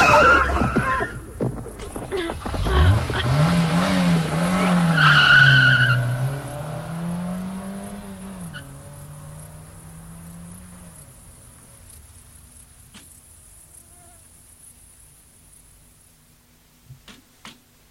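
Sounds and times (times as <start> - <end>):
car tire squeal from a skid: 0.0 - 9.6
car engine driving through a forest: 0.0 - 13.6.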